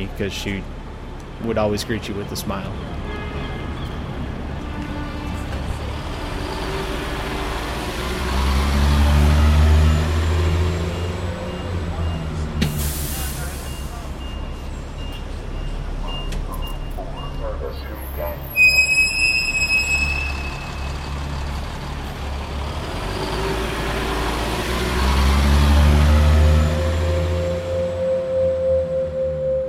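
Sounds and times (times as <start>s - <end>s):
speech: 0.0s - 0.8s, 1.4s - 3.2s
heavy bus engines rumbling at a busy downtown street stop: 0.0s - 29.6s
air brakes hissing: 12.6s - 14.3s
high electronic beeps: 13.6s - 21.0s, 26.2s - 29.6s.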